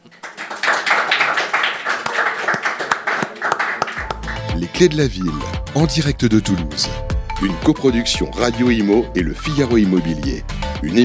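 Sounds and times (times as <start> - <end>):
crowd applauding: 0.0 - 5.8
speech: 4.8 - 11.0.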